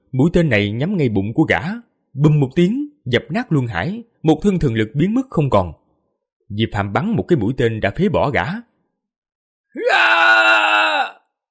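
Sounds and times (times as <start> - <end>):
speech: 0.1 - 5.8, 6.5 - 8.7, 9.8 - 11.2
man's anguished wailing scream: 9.8 - 11.3.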